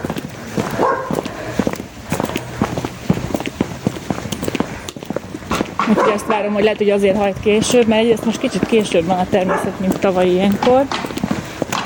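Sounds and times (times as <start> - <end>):
footsteps crunching along the ground: 0.0 - 11.8
dogs barking outdoors at people walking by: 0.6 - 1.5, 5.8 - 6.6, 9.3 - 10.2
speech: 5.9 - 11.2.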